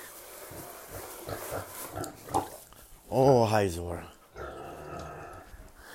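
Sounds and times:
female potbelly pig grunting: 0.4 - 2.6, 3.9 - 5.5
speech: 3.1 - 4.2.

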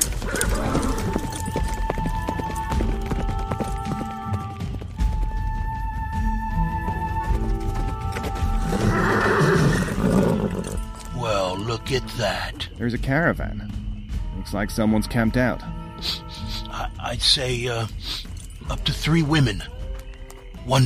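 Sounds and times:
horse hoofbeats setting off on a ride: 0.0 - 11.7, 17.9 - 20.8
horse whinny: 0.2 - 1.4, 8.5 - 11.0
speech: 11.9 - 13.8, 14.5 - 16.2, 17.1 - 19.7, 20.7 - 20.8.

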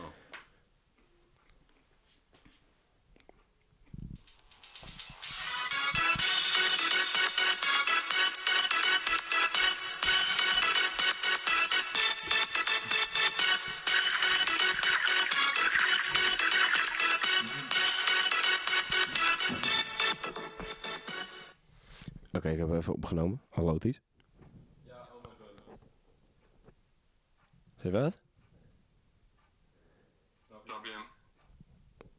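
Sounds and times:
mobile phone ringtone with bright repeating melody: 4.5 - 21.6
speech: 22.6 - 24.0, 27.8 - 28.2.

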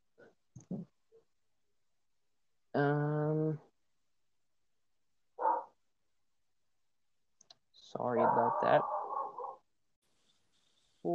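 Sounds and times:
speech: 2.8 - 3.1
dog barking: 5.4 - 5.8, 8.2 - 9.6.

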